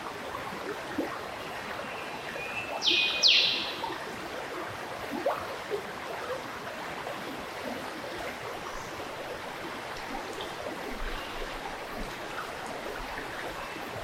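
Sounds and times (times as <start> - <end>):
Esperance River flowing in Tasmania: 0.0 - 14.0
bird calling by the Esperance River in Tasmania: 2.8 - 3.8.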